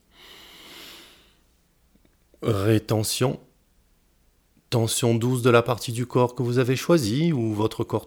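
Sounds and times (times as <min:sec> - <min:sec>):
soft inhalation of breath during a guided relaxation exercise: 0:00.0 - 0:01.6
speech: 0:02.4 - 0:03.5, 0:04.8 - 0:08.0.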